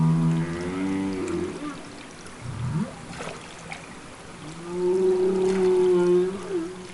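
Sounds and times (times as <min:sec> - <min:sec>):
humpback whale social calls underwater: 0:00.0 - 0:03.1, 0:04.4 - 0:06.9.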